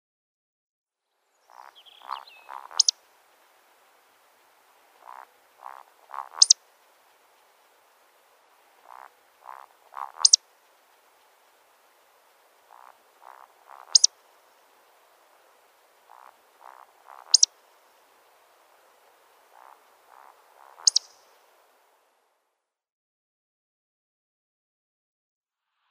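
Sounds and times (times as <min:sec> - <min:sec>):
male Eurasian Woodcock display flight: 0:01.5 - 0:21.8.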